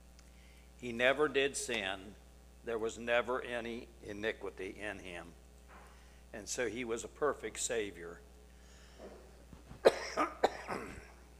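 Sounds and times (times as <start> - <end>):
speech: 0.8 - 5.4, 6.3 - 8.3
preacher coughing during a sermon: 9.8 - 11.2.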